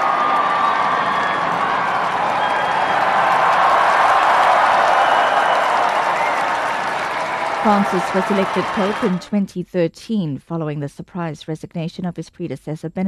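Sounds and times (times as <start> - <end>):
whoops from the crowd: 0.0 - 9.2
large crowd cheering and applauding in an open square: 0.0 - 9.3
speech: 7.6 - 13.0.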